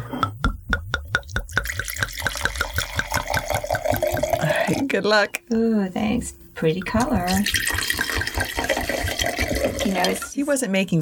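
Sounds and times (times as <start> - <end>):
wine glugging out of a bottle into a glass: 1.4 - 4.8, 7.2 - 10.4
speech: 4.9 - 8.6, 9.8 - 11.0.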